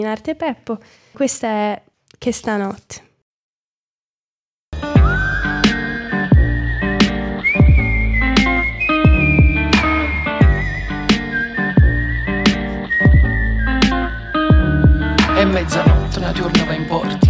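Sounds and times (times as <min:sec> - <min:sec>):
speech: 0:00.0 - 0:03.1, 0:15.6 - 0:17.2
loud sustained whistled melody: 0:04.8 - 0:17.2
steady beat: 0:04.8 - 0:17.2.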